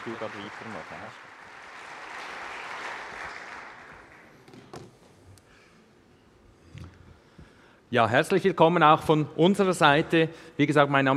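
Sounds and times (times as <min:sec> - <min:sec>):
speech: 0:00.0 - 0:01.4, 0:07.9 - 0:11.1
crowd applauding: 0:00.0 - 0:04.4.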